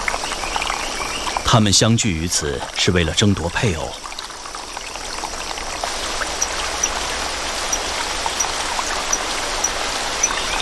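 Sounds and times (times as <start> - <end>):
babbling rainforest stream swollen by rain: 0.0 - 10.6
water splashes and drips: 0.0 - 10.6
speech: 1.5 - 4.0.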